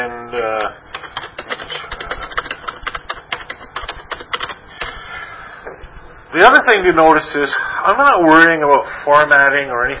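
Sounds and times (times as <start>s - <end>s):
speech: 0.3s - 1.0s, 6.3s - 9.9s
typing on a keyboard: 0.6s - 4.9s.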